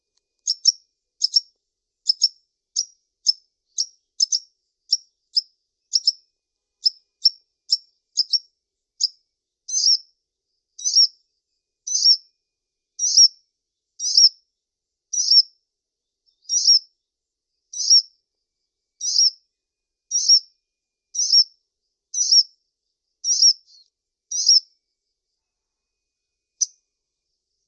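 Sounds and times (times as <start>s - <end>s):
brown-throated sunbird repeating a high sharp chip: 0.0s - 6.2s, 6.8s - 10.0s, 11.9s - 12.2s, 16.3s - 16.8s, 19.0s - 19.4s, 21.2s - 21.5s, 22.2s - 22.4s, 23.2s - 24.6s.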